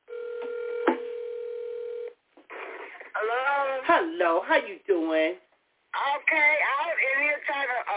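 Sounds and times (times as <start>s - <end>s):
telephone dialing tone humming: 0.0s - 2.2s
speech: 3.2s - 7.8s.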